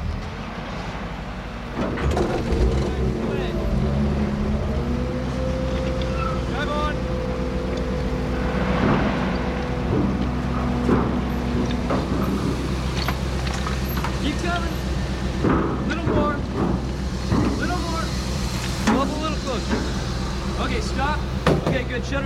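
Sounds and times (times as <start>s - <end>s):
heavy steady engine rumble: 0.0s - 22.2s
vehicles idling and rolling past: 0.0s - 22.2s
metallic clanks and thumps: 8.0s - 14.6s, 15.3s - 20.1s.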